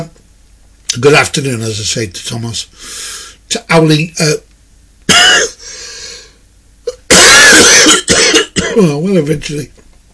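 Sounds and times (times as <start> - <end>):
speech: 0.9 - 4.5, 8.8 - 9.9
throat-clearing rasp: 5.1 - 5.6, 6.9 - 8.9
harsh coughing fit: 5.1 - 5.7, 6.9 - 9.0.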